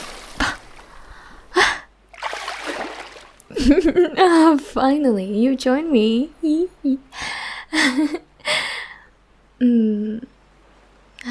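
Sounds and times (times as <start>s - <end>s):
warm pool water splashed by hand: 0.0s - 1.0s, 2.1s - 3.5s
pool water dripping and sloshing: 0.0s - 1.4s, 2.1s - 3.8s
speech: 3.6s - 7.2s, 7.8s - 8.2s, 9.6s - 10.3s.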